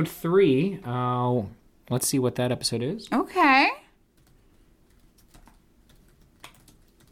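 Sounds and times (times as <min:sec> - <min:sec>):
speech: 0:00.0 - 0:03.8
low hum: 0:00.0 - 0:07.0
soft key clicks of typing on a computer keyboard: 0:04.2 - 0:07.0.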